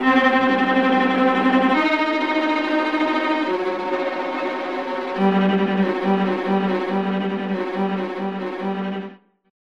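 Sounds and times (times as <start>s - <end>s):
viola tremolo: 0.0s - 9.1s.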